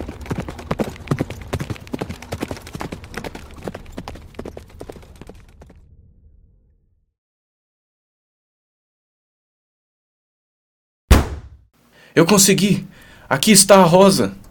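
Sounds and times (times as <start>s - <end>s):
horse galloping at full speed: 0.0s - 5.9s
sharp bang: 11.1s - 11.6s
speech: 12.2s - 14.4s.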